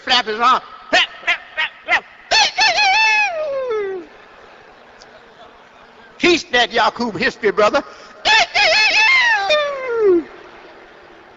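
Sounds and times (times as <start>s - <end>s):
speech: 0.1s - 1.0s, 6.5s - 8.2s
rooster crowing: 1.2s - 4.0s, 8.2s - 10.2s.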